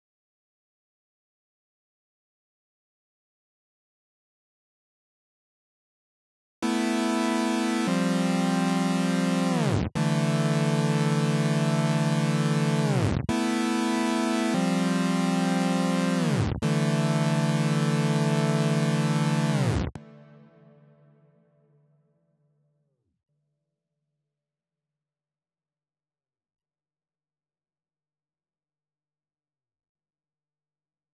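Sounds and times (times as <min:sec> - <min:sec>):
saw synth melody loop in A minor: 0:06.6 - 0:20.0.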